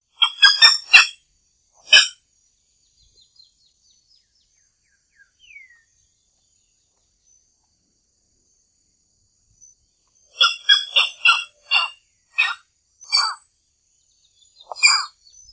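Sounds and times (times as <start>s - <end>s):
striated heron calling: 0.1s - 1.2s, 1.8s - 2.2s, 10.3s - 13.4s, 14.6s - 15.4s.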